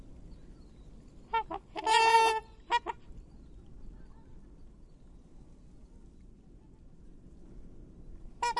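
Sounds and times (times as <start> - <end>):
black swan Cygnus atratus honking: 1.3 - 3.1, 8.4 - 8.5.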